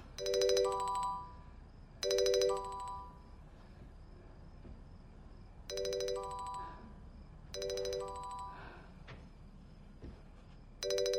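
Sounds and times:
phone ringtone chiming on a bedside table: 0.0 - 3.2, 5.7 - 6.9, 7.6 - 8.8, 10.8 - 11.1.

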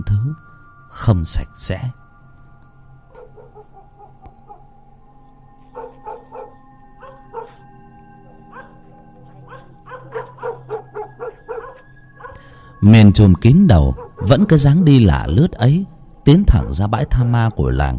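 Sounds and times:
speech: 0.0 - 2.0, 12.8 - 17.9
village dogs barking and yelping: 3.0 - 4.9, 5.6 - 12.8, 13.7 - 14.8.

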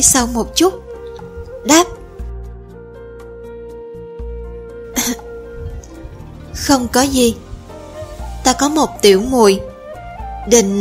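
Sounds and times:
speech: 0.0 - 0.9, 1.6 - 2.0, 6.7 - 7.5, 8.4 - 9.7, 10.4 - 10.7
soft music bed: 0.0 - 10.7
throat clearing: 5.0 - 5.3.

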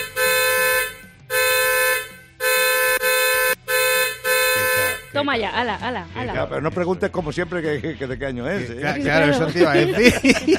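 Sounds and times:
car horn honking: 0.0 - 5.2
speech: 5.2 - 10.5
laughter: 8.6 - 10.5.

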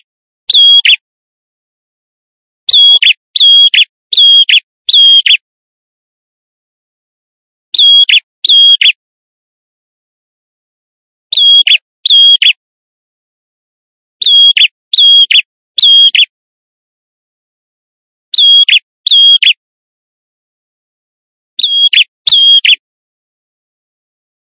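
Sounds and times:
male prinia in vigorous song used as a lure: 0.5 - 1.0, 2.7 - 5.4, 7.8 - 9.0, 11.3 - 12.6, 14.2 - 16.3, 18.3 - 19.6, 21.6 - 22.8.

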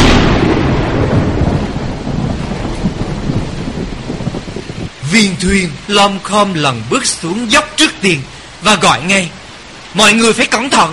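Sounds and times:
deep rumbling thunder: 0.0 - 5.9
heavy rain downpour on a windy mountain: 0.0 - 10.9
speech: 5.1 - 9.4, 10.0 - 10.9.

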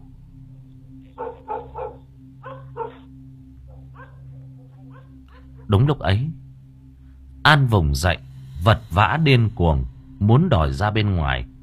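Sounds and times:
steady low hum: 0.0 - 11.6
black dog barking outside the gate toward a river: 1.1 - 3.1, 3.7 - 5.7
speech: 5.7 - 6.4, 7.4 - 11.5.

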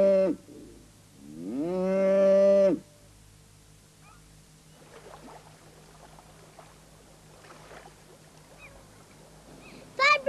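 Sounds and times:
cows mooing on a farm: 1.2 - 2.8.

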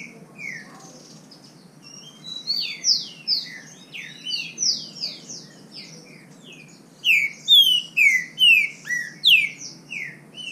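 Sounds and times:
wild green-winged saltator singing in the bush: 0.0 - 10.5.

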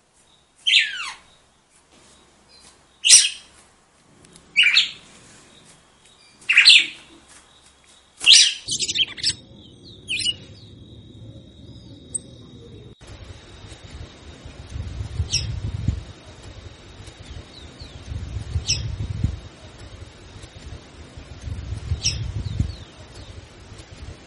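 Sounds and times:
red-cowled cardinal singing chirped notes: 0.3 - 3.5, 4.5 - 24.1
steady high whine: 4.0 - 24.2
low rumble: 8.6 - 24.2.

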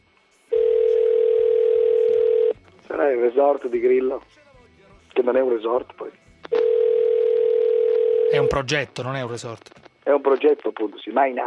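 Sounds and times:
telephone ringing for an incoming call from abroad: 0.5 - 2.6, 6.5 - 8.6
speech: 3.1 - 4.5, 5.2 - 6.7, 8.3 - 11.4.

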